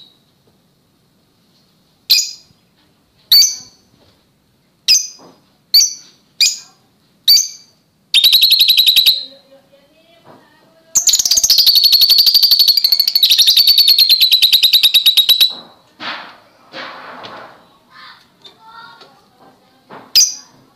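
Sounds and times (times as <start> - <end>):
Oriental magpie-robin singing: 2.1 - 2.6, 3.3 - 3.9, 4.9 - 9.3, 10.8 - 15.8, 20.1 - 20.7.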